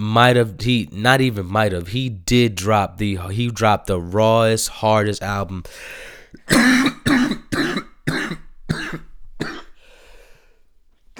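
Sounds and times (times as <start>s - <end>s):
speech: 0.0s - 7.8s
harsh hacking coughs from a tickle in the throat: 5.7s - 9.8s.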